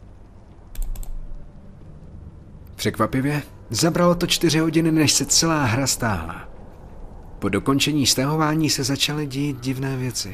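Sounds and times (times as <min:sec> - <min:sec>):
low steady room hum: 0:00.0 - 0:10.3
computer keyboard and mouse clicks: 0:00.7 - 0:01.2
speech: 0:02.8 - 0:06.5, 0:07.4 - 0:10.3.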